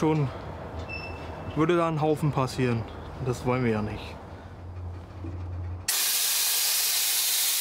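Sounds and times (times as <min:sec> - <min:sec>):
speech: 0:00.0 - 0:00.4, 0:01.6 - 0:04.2
low mechanical rumble: 0:02.7 - 0:05.9
air hissing out of freight train brakes: 0:05.9 - 0:07.5.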